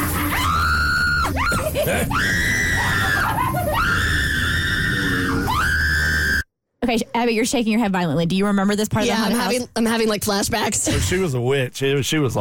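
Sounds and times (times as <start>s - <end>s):
person screaming in a haunted house: 0.0s - 6.4s
speech: 1.9s - 2.6s, 6.9s - 12.3s.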